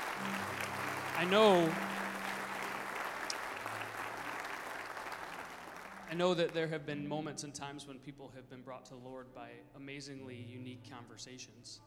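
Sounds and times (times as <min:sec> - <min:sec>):
audience clapping: 0:00.0 - 0:06.8
speech: 0:01.2 - 0:01.9, 0:06.1 - 0:11.8.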